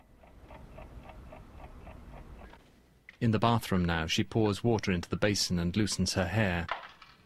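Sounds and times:
alarm clock ticking: 0.0s - 2.4s
low hum: 0.0s - 7.2s
speech: 3.2s - 6.8s.

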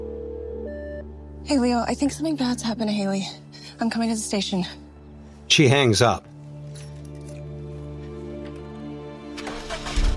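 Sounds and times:
speech: 1.5s - 4.8s, 5.5s - 6.3s
car engine cranking and starting: 9.3s - 10.1s.

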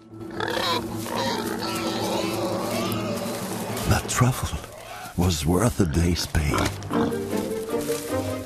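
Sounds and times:
pig grunting and snuffling: 0.3s - 5.2s
speech: 3.9s - 7.5s.

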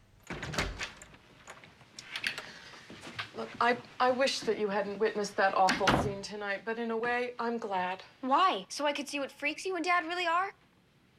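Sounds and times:
swinging door creaks and taps: 0.2s - 2.5s
speech: 3.4s - 10.6s.

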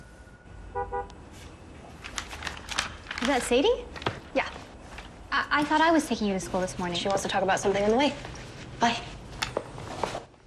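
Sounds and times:
car horn honking: 0.0s - 1.2s
speech: 3.2s - 4.6s, 5.5s - 9.1s.

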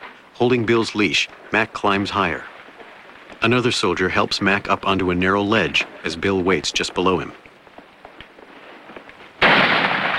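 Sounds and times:
speech: 0.4s - 2.5s, 3.4s - 7.4s
gunfire in a war film scene on a steep rock face: 9.4s - 10.1s.

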